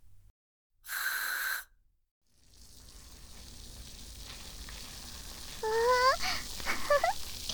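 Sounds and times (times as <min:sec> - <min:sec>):
carbonated shampoo fizzing and crackling as it is lathered between hands: 0:02.4 - 0:07.5.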